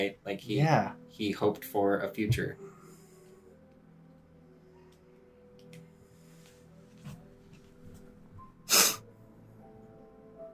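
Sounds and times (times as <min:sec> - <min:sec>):
speech: 0:00.0 - 0:02.7
person sniffling: 0:08.7 - 0:09.0.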